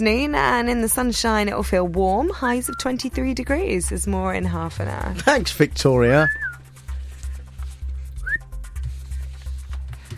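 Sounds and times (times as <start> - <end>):
speech: 0.0 - 6.5
steady low thumping rhythm: 0.0 - 10.1
person whistling a short rising note with their mouth: 6.2 - 6.6, 8.2 - 8.5.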